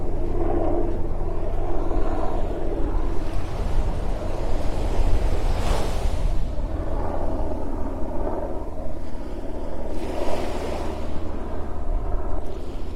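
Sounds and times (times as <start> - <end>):
gentle ocean waves washing onto a beach at dusk: 0.0 - 12.9
steady low rumble: 0.0 - 12.9.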